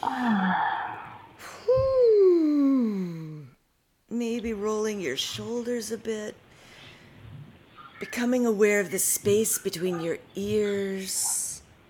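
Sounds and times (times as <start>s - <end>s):
person yawning with a groan: 0.0s - 3.6s
speech: 5.0s - 6.4s, 8.0s - 11.4s.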